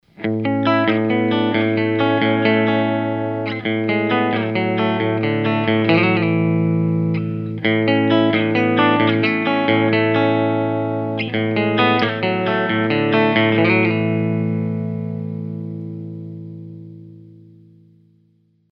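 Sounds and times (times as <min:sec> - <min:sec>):
clean electric guitar with split humbuckers: 0:00.0 - 0:18.7.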